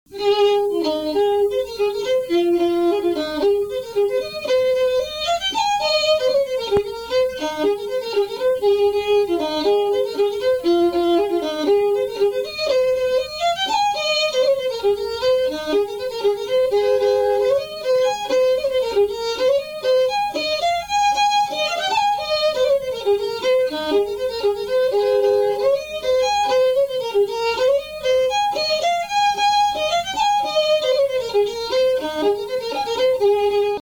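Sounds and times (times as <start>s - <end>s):
fiddle tune: 0.1s - 33.8s.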